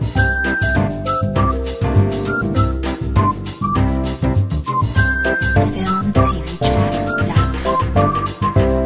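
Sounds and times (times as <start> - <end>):
mambo whistle: 0.2 - 8.7.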